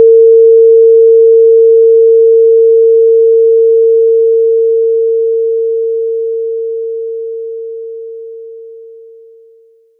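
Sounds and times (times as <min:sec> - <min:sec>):
philharmonic pitch tuning fork tone: 0:00.0 - 0:09.9.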